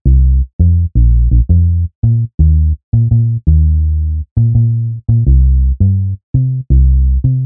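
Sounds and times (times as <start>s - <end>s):
bass: 0.0s - 7.4s.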